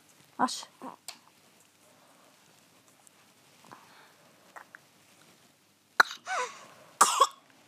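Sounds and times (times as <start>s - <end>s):
faint rustling: 0.0s - 5.7s
person coughing dry coughs during a medical examination: 6.0s - 7.4s.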